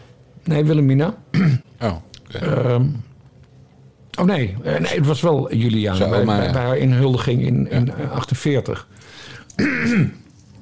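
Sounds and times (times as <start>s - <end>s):
speech: 0.5s - 3.1s, 4.2s - 10.2s
rough throat clearing: 1.3s - 1.7s, 9.6s - 10.2s.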